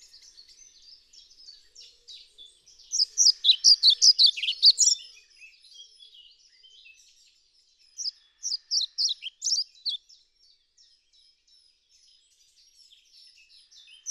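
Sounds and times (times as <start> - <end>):
European pied flycatcher Ficedula hypoleuca song: 0.0 - 14.0.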